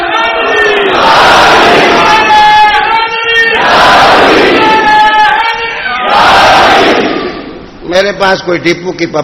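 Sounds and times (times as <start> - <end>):
large crowd shouting a chanted religious slogan in unison: 0.2 - 2.8, 3.5 - 5.2, 6.0 - 7.7
speech: 8.2 - 9.2.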